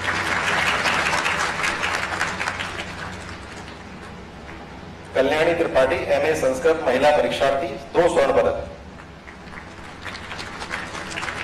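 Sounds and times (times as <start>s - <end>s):
audience applause at an academic ceremony: 0.0s - 4.2s, 9.2s - 11.4s
speech: 5.2s - 8.7s.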